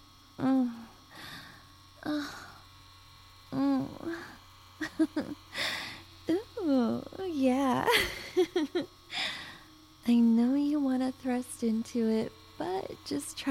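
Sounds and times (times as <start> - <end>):
vibrating sex toy buzzing against a penis: 0.0 - 13.5
person making vocal sounds: 2.0 - 2.6, 3.5 - 5.4
speech: 13.0 - 13.5.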